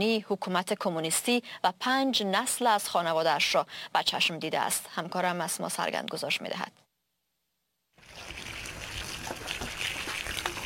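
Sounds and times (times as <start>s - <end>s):
speech: 0.0s - 6.8s
water pouring onto flowers in a courtyard garden in southern Albania: 8.0s - 10.6s.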